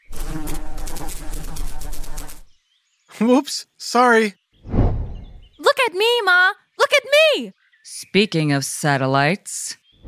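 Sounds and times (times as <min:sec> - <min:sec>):
insects buzzing in a dense droning hum: 0:00.0 - 0:02.6
speech: 0:03.2 - 0:04.4, 0:05.9 - 0:09.8.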